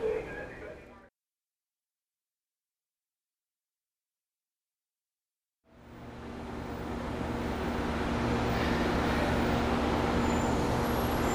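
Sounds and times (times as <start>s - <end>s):
broad road noise heard from inside a shuttle bus: 5.7s - 11.3s
shuttle bus engine rumble: 5.8s - 11.3s.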